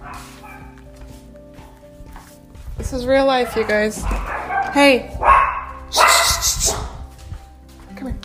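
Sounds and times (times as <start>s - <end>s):
dog barking: 0.0s - 0.8s, 3.4s - 7.1s
speech: 2.8s - 5.3s.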